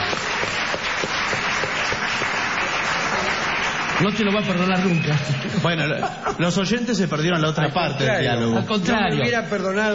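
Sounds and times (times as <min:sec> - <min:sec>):
audience applause: 0:00.0 - 0:06.0
speech: 0:04.0 - 0:09.9
laughter: 0:05.1 - 0:09.4.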